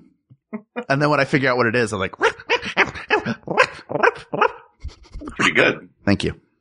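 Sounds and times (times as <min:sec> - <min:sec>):
speech: 0:00.5 - 0:02.8, 0:05.6 - 0:06.4
person imitating a puppy's yappy barks: 0:02.2 - 0:05.7.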